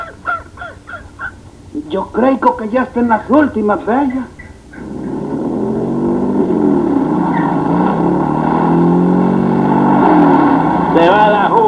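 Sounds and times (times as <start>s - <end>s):
speech: 1.8s - 4.4s
car engine accelerating: 3.3s - 11.6s.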